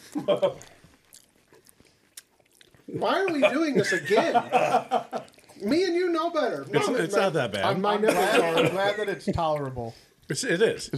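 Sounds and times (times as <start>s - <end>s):
laughter: 0.0s - 0.7s, 3.0s - 5.9s, 6.8s - 9.3s
speech: 0.1s - 0.8s, 2.9s - 10.9s
person chewing a whole spicy hot chip: 0.6s - 2.9s.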